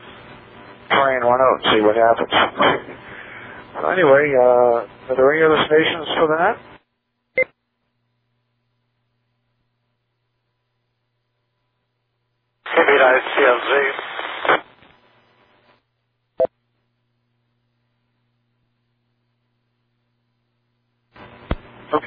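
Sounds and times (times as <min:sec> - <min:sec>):
crackling static on an analog radio transmission: 0:00.0 - 0:06.8, 0:12.6 - 0:15.8, 0:21.2 - 0:22.0
speech: 0:01.0 - 0:03.0, 0:03.8 - 0:06.8.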